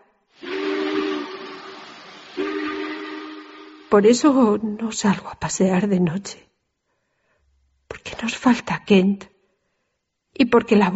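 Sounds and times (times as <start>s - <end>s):
breathy steam hiss: 0.2s - 4.6s
loud piercing train whistle blasts signalling departure: 0.4s - 4.6s
speech: 3.9s - 6.5s, 8.2s - 9.3s, 10.4s - 10.9s.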